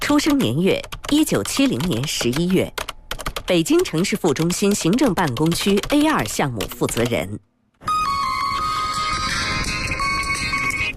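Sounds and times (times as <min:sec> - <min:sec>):
speech: 0:00.1 - 0:02.8, 0:03.5 - 0:07.9
phone ringing with an incoming call at a large building site: 0:07.8 - 0:10.9.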